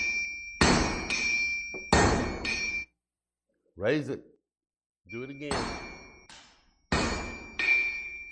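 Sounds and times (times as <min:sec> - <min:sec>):
heavy hammer striking an anvil in forging: 0:00.0 - 0:02.9, 0:05.3 - 0:08.2
speech: 0:03.8 - 0:04.3, 0:05.0 - 0:05.8.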